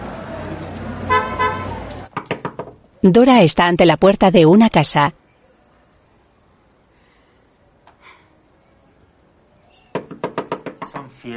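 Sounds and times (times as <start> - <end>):
car horn toots: 1.1 - 1.8
speech: 3.0 - 5.2.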